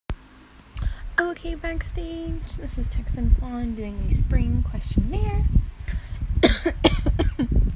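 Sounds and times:
speech: 1.2 - 7.7
person coughing: 6.4 - 7.5.

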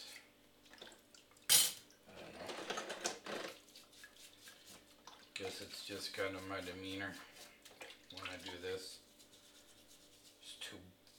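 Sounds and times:
dishes and cutlery clinking while being washed: 1.5 - 1.8
scraping and rushing splashy water while washing dishes: 2.2 - 9.4
speech: 5.4 - 7.3, 8.2 - 9.0.

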